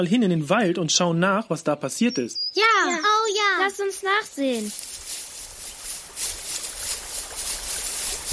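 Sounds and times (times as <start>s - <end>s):
speech: 0.0s - 5.0s
babbling forest stream: 2.6s - 8.3s.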